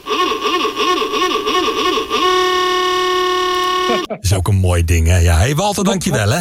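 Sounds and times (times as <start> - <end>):
old horn honking: 0.0 - 4.1
speech: 4.2 - 6.3.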